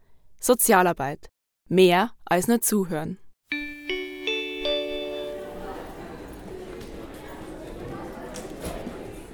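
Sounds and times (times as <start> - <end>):
speech: 0.4 - 3.2
school bell three-note chime: 3.5 - 6.4
chatter and bustle: 4.9 - 9.3.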